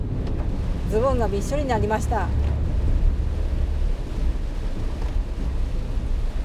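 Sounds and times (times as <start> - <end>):
gusting typhoon wind buffeting the microphone: 0.0 - 6.4
heavy typhoon rain: 0.0 - 6.4
speech: 0.9 - 2.5.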